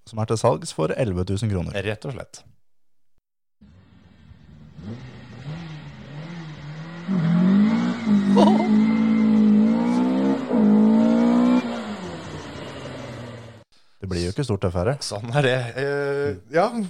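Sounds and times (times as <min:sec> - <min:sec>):
speech: 0:00.1 - 0:02.6, 0:14.1 - 0:16.8
bilcross race car engine idling and revving: 0:03.6 - 0:13.6.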